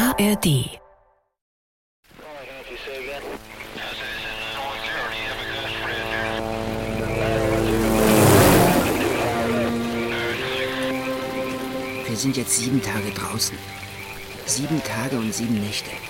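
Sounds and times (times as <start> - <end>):
speech: 0.2 - 0.8, 12.2 - 13.8, 14.5 - 16.0
heavy continuous rain: 2.0 - 16.0
low tonal hum: 4.7 - 12.1.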